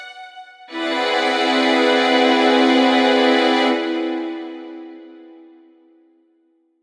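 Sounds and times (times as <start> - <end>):
augmented major seventh chord with sharp eleventh: 0.7 - 5.6.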